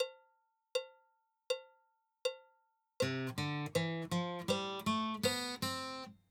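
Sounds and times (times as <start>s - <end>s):
guitar melody: 3.0s - 6.1s.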